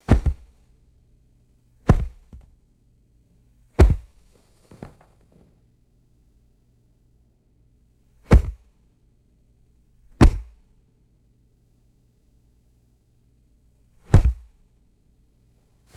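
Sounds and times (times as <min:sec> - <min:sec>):
large hard-soled shoe dropping on carpet: 0:00.0 - 0:00.5, 0:01.9 - 0:02.5, 0:03.8 - 0:05.5, 0:14.2 - 0:14.4.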